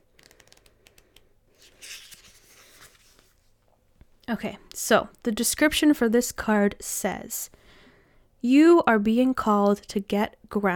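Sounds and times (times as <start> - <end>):
pages of an oracle-card guidebook flipping: 0.1 - 3.6
speech: 4.3 - 7.6, 8.4 - 10.7.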